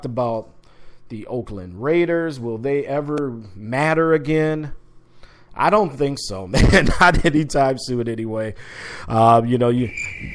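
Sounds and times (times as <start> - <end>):
speech: 0.0 - 4.8, 5.6 - 10.3
cricket chirping: 9.6 - 10.3.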